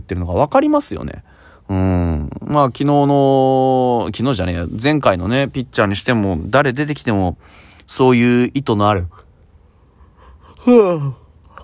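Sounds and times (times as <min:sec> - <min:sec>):
speech: 0:00.1 - 0:09.2, 0:10.6 - 0:11.2
voiced yawn: 0:01.7 - 0:02.5, 0:10.4 - 0:11.6.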